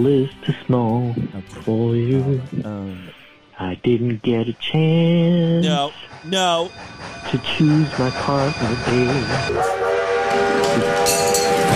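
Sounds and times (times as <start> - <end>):
speech: 0.0 - 11.4
train whistle blowing: 5.6 - 11.7.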